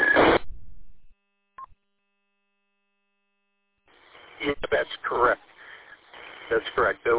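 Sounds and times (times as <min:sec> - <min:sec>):
radio static burst ending a transmission: 0:00.0 - 0:00.6, 0:03.9 - 0:07.1
speech: 0:04.4 - 0:05.5, 0:06.5 - 0:07.1.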